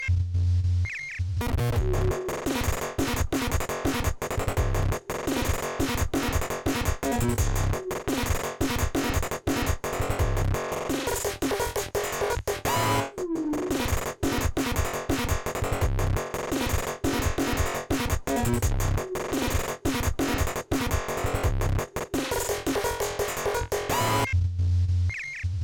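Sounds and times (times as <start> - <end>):
drums: 0.0 - 25.6.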